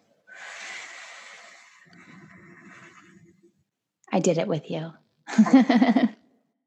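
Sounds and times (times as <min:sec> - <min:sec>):
forceful breathy exhale through the mouth in a breathing exercise: 0:00.0 - 0:03.3
speech: 0:04.1 - 0:06.2
laughter: 0:05.3 - 0:06.2.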